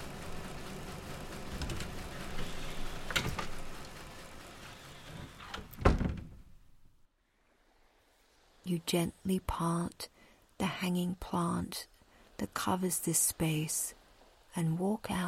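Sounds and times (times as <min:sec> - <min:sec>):
small door creaking open: 0:01.5 - 0:03.6, 0:05.0 - 0:06.6
small door shutting with a solid thunk: 0:05.1 - 0:06.5
speech: 0:08.7 - 0:14.0, 0:14.6 - 0:15.2.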